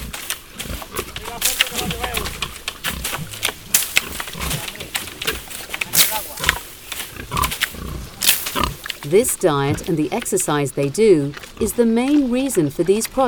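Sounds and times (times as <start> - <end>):
sharp little cracks: 0.0 - 9.2
pigs crunching and rustling while chewing ripe acorns: 0.0 - 10.4
pigs in a meadow grunting and snorting: 0.0 - 13.2
speech: 9.1 - 13.2.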